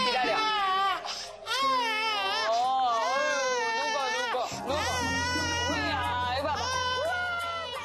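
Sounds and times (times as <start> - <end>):
baby crying: 0.0 - 7.8
baby gasping breath: 1.0 - 1.4.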